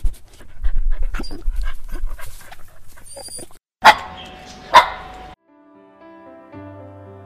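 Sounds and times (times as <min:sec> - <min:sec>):
dog panting: 0:00.1 - 0:03.5
dog barking: 0:03.8 - 0:05.2.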